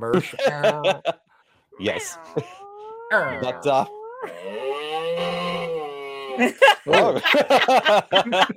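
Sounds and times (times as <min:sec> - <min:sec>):
laughter: 0:00.0 - 0:01.2, 0:05.2 - 0:08.5
speech: 0:00.0 - 0:01.2, 0:01.8 - 0:04.6, 0:06.4 - 0:08.5
sickly low wavering cat meow: 0:01.9 - 0:04.3.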